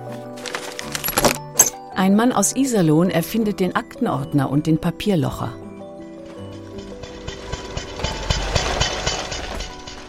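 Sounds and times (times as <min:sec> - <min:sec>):
speech: 0:02.0 - 0:05.6
four-stroke combustion engine of a three-wheeled motor vehicle starting in Mannheim: 0:06.2 - 0:10.0.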